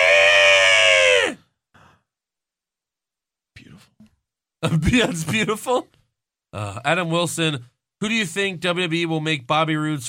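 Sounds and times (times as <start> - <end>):
person imitating a wrestler's loud harsh scream: 0.0 - 1.4
speech: 4.6 - 10.0.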